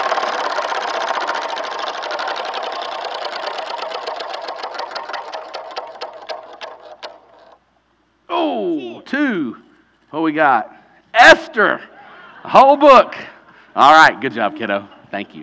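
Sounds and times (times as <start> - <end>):
prize wheel spun by hand ticking: 0.0 - 7.6
speech: 9.1 - 15.4.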